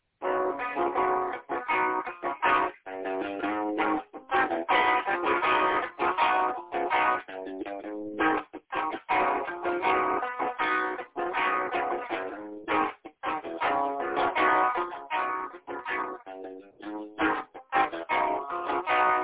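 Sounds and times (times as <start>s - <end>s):
repeating groovy music changes: 0.2s - 19.2s.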